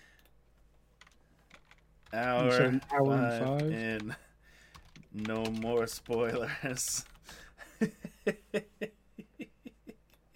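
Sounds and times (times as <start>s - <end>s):
typing on a computer keyboard: 1.0s - 4.1s, 4.7s - 7.5s
speech: 2.1s - 4.2s, 5.2s - 8.9s.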